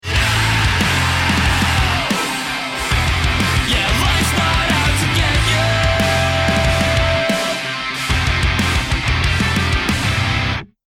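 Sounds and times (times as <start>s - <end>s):
round MVP anthem music: 0.0s - 10.8s.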